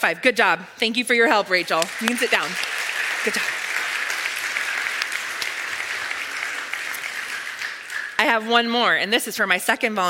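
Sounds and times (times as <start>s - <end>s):
speech: 0.0s - 3.6s, 8.2s - 10.0s
crowd applauding: 1.5s - 8.4s.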